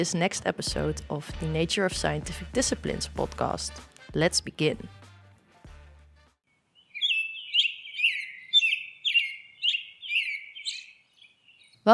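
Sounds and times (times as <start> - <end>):
speech: 0.0 - 5.0
bird singing bright chirping phrases: 6.5 - 11.9.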